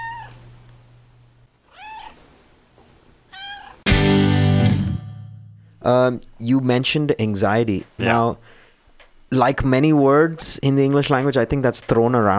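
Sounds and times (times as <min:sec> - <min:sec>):
cat meowing: 0:00.0 - 0:00.4, 0:01.7 - 0:02.2, 0:03.3 - 0:03.9
speech: 0:05.8 - 0:08.6, 0:09.3 - 0:12.3.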